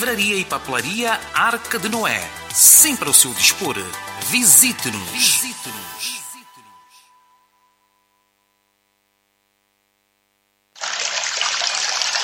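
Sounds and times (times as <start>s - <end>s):
speech: 0.0s - 6.2s
faint hum: 6.6s - 10.7s
mineral water pouring: 10.8s - 12.2s.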